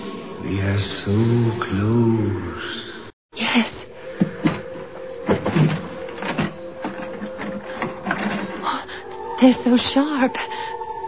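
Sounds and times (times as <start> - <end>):
speech: 0.5 - 2.9, 3.6 - 3.8, 9.4 - 10.8
drawer sliding open: 4.2 - 8.6
contents of drawer clicking and rattling: 4.4 - 8.7.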